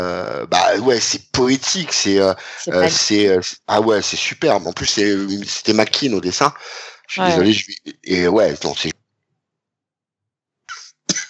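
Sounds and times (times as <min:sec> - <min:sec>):
laughter: 0:00.0 - 0:08.9, 0:10.7 - 0:11.2
speech: 0:00.0 - 0:09.0
person coughing: 0:02.2 - 0:03.4, 0:05.7 - 0:07.6, 0:10.7 - 0:11.2.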